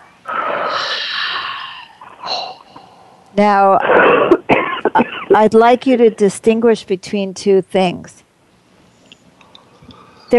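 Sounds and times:
deep breath drawn in through the mouth: 0.3 - 3.2
speech: 3.4 - 4.4, 5.0 - 8.2.

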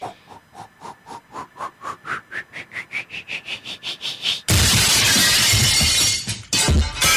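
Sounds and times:
rising pulsing whistle of a vinyl record thrown like a frisbee: 1.1 - 4.5
ceramic vase shattering into pieces: 4.7 - 7.0.

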